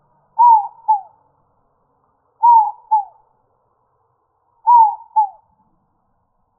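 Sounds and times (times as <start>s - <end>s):
dove cooing: 0.4s - 1.1s, 2.4s - 3.2s, 4.7s - 5.4s.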